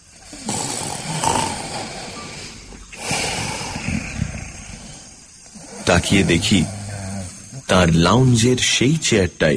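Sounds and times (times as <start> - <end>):
drunk man snoring asleep with his mouth open in a lounge chair: 0.3 - 7.6
speech: 5.9 - 6.8, 7.7 - 9.5.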